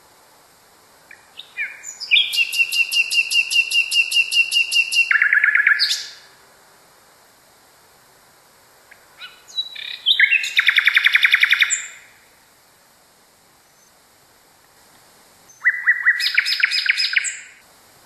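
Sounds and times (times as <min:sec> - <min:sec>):
common nightingale singing: 0:01.0 - 0:06.3, 0:08.9 - 0:12.2, 0:13.6 - 0:14.0, 0:15.4 - 0:17.6.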